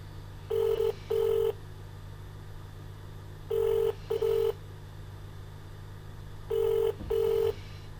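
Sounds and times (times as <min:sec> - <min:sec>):
low constant electrical hum: 0:00.0 - 0:07.9
telephone ringing in double bursts: 0:00.5 - 0:01.6, 0:03.5 - 0:04.6, 0:06.5 - 0:07.6.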